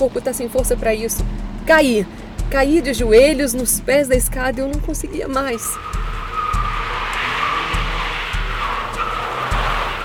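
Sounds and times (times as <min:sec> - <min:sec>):
speech: 0:00.0 - 0:06.1
car engine rumbling: 0:00.0 - 0:10.0
car wheels bumping up onto sidewalk curb: 0:00.0 - 0:10.0
car tire squeal skidding to a stop: 0:05.1 - 0:10.0.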